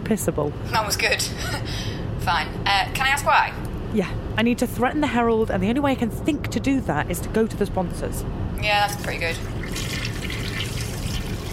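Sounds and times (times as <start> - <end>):
speech: 0.1 - 10.0
toilet flushing: 9.3 - 11.5.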